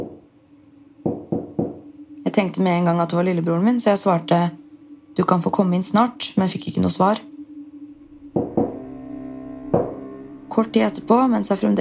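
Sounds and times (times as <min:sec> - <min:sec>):
room hum: 0:00.0 - 0:11.7
knocking on a bathroom door: 0:01.0 - 0:01.8
speech: 0:02.4 - 0:04.6, 0:05.2 - 0:07.3, 0:10.8 - 0:11.7.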